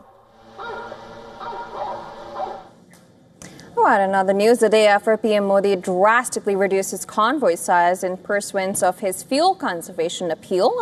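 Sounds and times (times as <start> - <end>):
hunting dogs barking harshly: 0.0 - 2.7
speech: 3.8 - 10.8.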